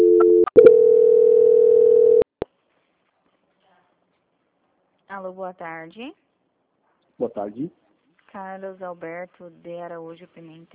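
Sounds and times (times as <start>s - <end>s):
telephone call-transfer tone: 0.0s - 2.3s
speech: 5.2s - 6.3s, 7.2s - 10.7s.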